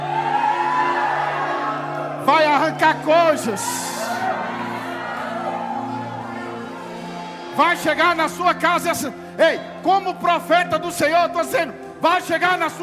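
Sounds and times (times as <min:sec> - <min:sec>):
congregation shouting and whooping: 0:00.0 - 0:07.8
speech: 0:02.3 - 0:04.2, 0:07.6 - 0:12.8.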